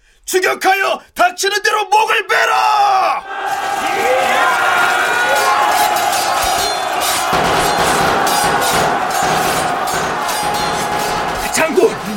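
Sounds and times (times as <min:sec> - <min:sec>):
speech: 0:00.3 - 0:04.6
battle din of many shouting voices: 0:03.2 - 0:12.1.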